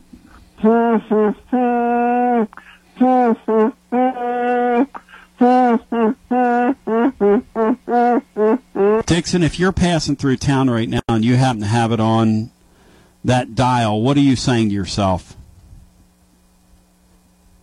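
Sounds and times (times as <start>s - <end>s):
speech: 0.6s - 6.1s, 9.1s - 12.6s, 13.2s - 15.4s
person humming a TV police drama theme tune: 0.6s - 9.1s.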